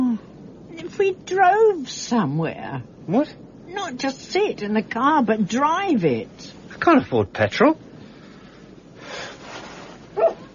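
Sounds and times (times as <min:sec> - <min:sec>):
soft breathy noise: 0:00.0 - 0:05.2, 0:07.7 - 0:10.5
speech: 0:01.0 - 0:07.8
poodle barking: 0:10.2 - 0:10.5.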